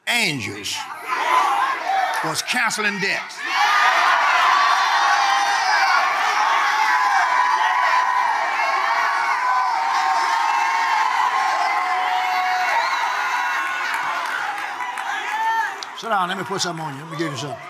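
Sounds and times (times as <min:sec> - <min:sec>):
large crowd shouting and cheering: 0:00.0 - 0:17.6
speech: 0:00.1 - 0:01.4, 0:02.2 - 0:03.8, 0:16.0 - 0:17.6
whoops: 0:09.3 - 0:15.8.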